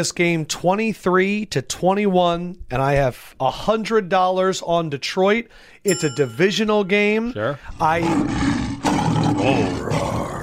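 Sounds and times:
speech: 0.0s - 8.7s, 9.3s - 10.3s
lion roaring: 7.7s - 10.4s.

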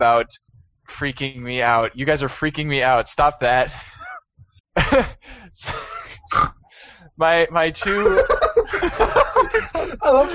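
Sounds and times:
speech: 0.0s - 3.9s, 4.8s - 10.3s
laughter: 3.8s - 4.2s, 4.8s - 6.3s, 7.8s - 10.3s
people imitating pig snorts: 6.1s - 6.7s.

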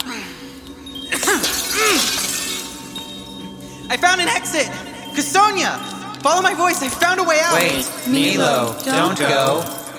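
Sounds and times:
tinkling mirror glass shards: 0.0s - 9.9s
mirror glass shattering: 0.9s - 8.1s
speech: 3.9s - 9.8s.

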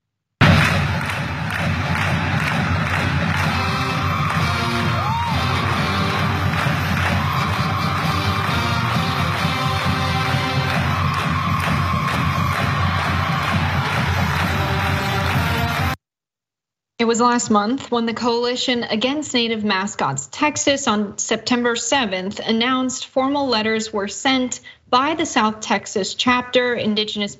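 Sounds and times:
large crowd cheering at a high school football game in Texas: 0.4s - 16.0s
whoops: 3.3s - 15.9s
speech: 17.0s - 27.3s.

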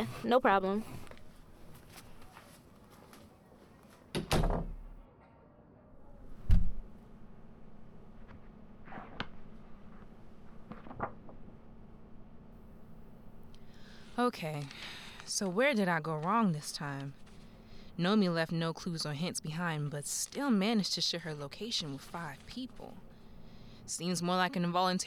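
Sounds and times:
speech: 0.0s - 1.0s, 14.3s - 17.2s, 18.0s - 23.1s, 23.9s - 25.0s
faint shuffling: 0.0s - 4.2s, 13.6s - 25.0s
quiet room hum: 0.0s - 25.0s
office door being shut with a heavy thump: 4.1s - 5.0s.

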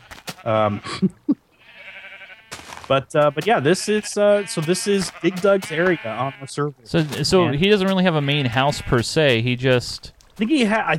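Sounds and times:
multicolored sheep bleating in a video game: 0.0s - 9.2s
speech: 0.4s - 1.3s, 2.9s - 10.9s.

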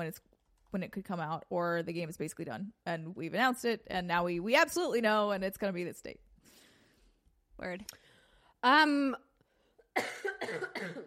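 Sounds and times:
speech: 0.0s - 6.6s, 7.6s - 8.0s, 8.6s - 9.3s, 10.0s - 11.0s
person coughing: 9.9s - 11.0s.

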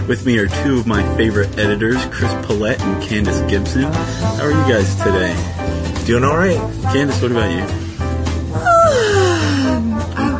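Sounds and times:
speech: 0.1s - 7.8s
long drawn-out human yawn: 8.5s - 10.3s.

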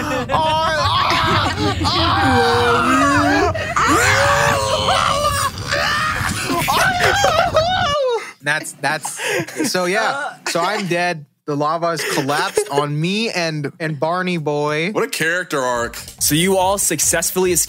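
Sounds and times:
laughter: 0.0s - 5.5s, 6.1s - 11.0s, 12.0s - 12.9s
several people screaming: 0.0s - 8.3s
speech: 0.2s - 0.5s, 8.4s - 17.6s.

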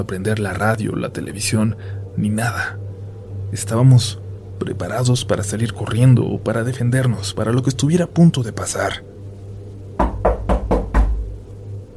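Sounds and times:
speech: 0.0s - 2.8s, 3.5s - 9.2s
low steady hum: 0.0s - 11.9s
firm knocks on a door: 10.0s - 11.3s.

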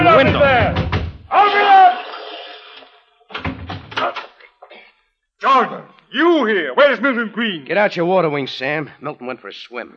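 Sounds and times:
heavy pounding on a front door: 0.0s - 1.2s, 3.3s - 4.1s
speech: 6.4s - 9.9s.

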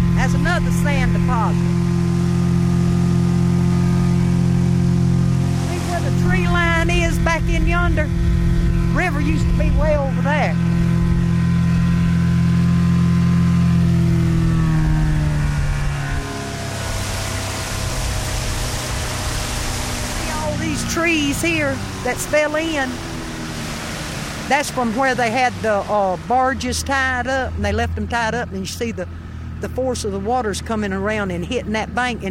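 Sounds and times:
small outboard motor on a 12-foot boat on a river droning: 0.0s - 32.2s
speech: 0.3s - 1.9s, 6.3s - 8.2s, 9.0s - 10.8s, 20.8s - 23.1s, 24.5s - 32.2s.

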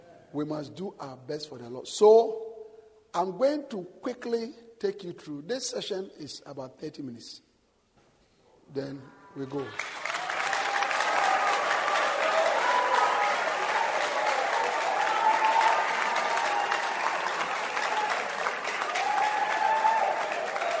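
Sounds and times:
speech: 0.3s - 2.4s, 3.1s - 7.5s, 8.7s - 10.0s
sustained applause from a large crowd: 9.6s - 20.7s.

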